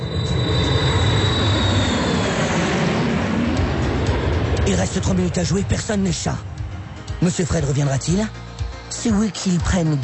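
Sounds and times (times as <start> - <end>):
thin high whine: 0.0 - 5.9
airplane sound effect engine roar: 0.0 - 10.0
speech: 4.8 - 6.5, 7.2 - 10.0.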